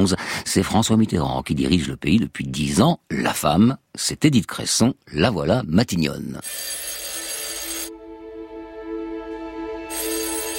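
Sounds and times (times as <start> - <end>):
speech: 0.0 - 7.0
telephone bell ringing: 6.4 - 7.9, 9.9 - 10.5.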